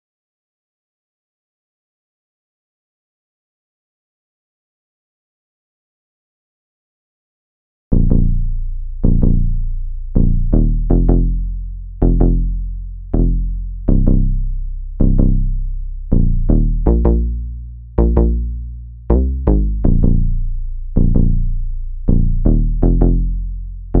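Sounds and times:
161 BPM bass line in F minor: 7.9s - 23.9s.

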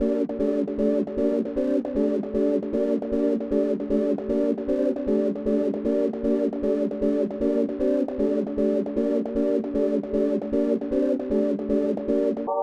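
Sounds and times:
154 BPM G minor trap main chords melody loop stem: 0.0s - 12.5s.

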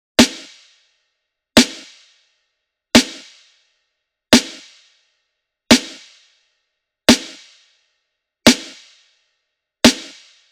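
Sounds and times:
boom bap drum loop with snare: 0.2s - 0.6s, 1.6s - 2.0s, 3.0s - 3.4s, 4.4s - 4.8s, 5.7s - 6.1s, 7.1s - 7.5s, 8.5s - 8.9s, 9.8s - 10.4s.

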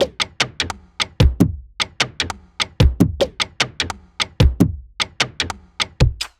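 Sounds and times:
drum and percussion loop at 150 BPM: 0.0s - 6.3s.

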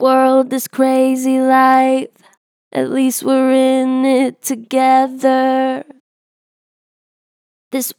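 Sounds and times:
vocals with strong natural vibrato: 0.0s - 6.0s.

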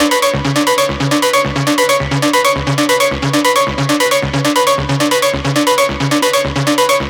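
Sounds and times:
techno synth loop: 0.0s - 7.0s.

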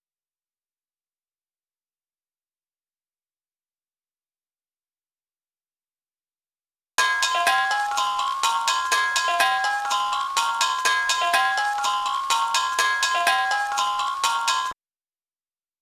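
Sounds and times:
high kalimba melody loop in F minor at 124 BPM: 7.0s - 14.8s.

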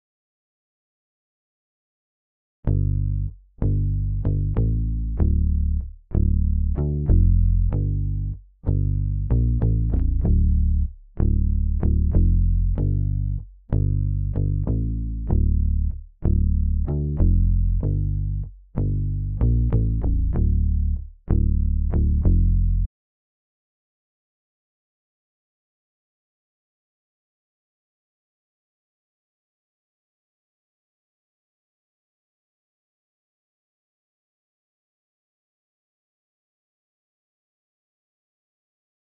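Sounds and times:
95 BPM G minor bass loop: 2.7s - 22.9s.

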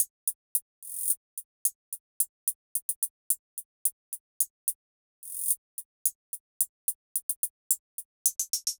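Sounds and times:
RnB hi-hat loop: 0.0s - 8.7s.

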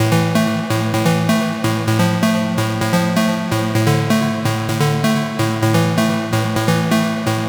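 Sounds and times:
melodic techno loop with feedback in A minor: 0.0s - 7.4s.

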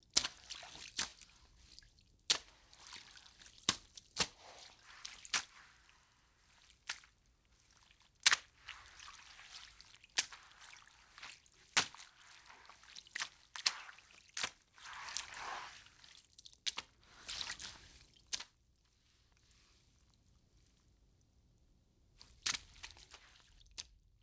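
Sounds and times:
mop moving water: 0.2s - 18.4s.

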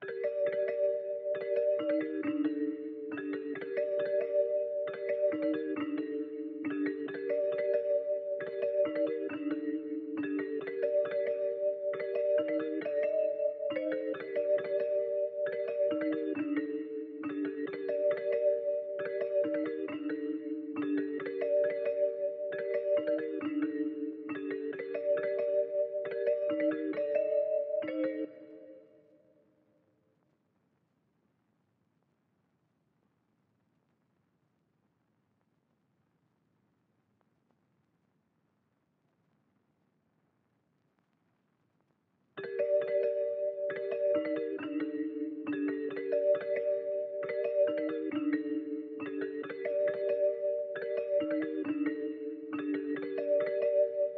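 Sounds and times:
celeste trap melody loop in G minor at 136 BPM: 0.0s - 28.9s, 42.4s - 54.1s.

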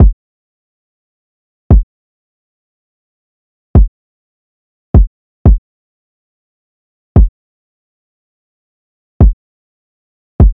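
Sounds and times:
kick drum: 1.7s - 1.9s, 5.0s - 5.6s, 7.2s - 7.4s, 9.2s - 9.4s, 10.4s - 10.5s
wood block drum loop: 5.0s - 5.6s.

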